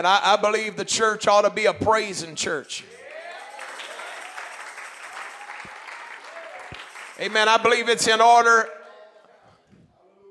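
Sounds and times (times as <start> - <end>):
speech: 0.0 - 3.0, 7.2 - 8.8
audience clapping hands: 3.0 - 8.0.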